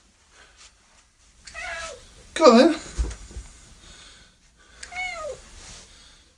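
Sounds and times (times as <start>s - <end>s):
cat meowing: 1.5s - 2.0s, 4.8s - 5.4s
speech: 2.4s - 2.8s.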